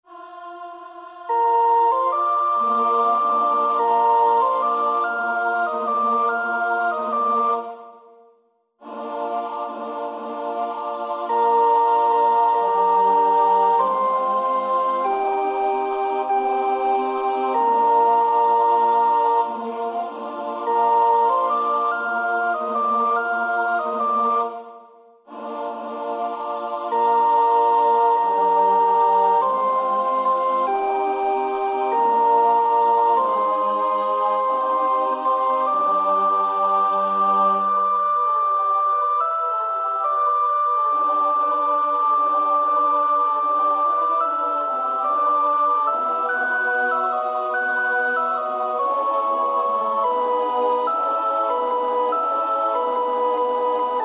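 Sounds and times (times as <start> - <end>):
first soprano choir part practice: 0.0 - 8.0, 8.8 - 54.0.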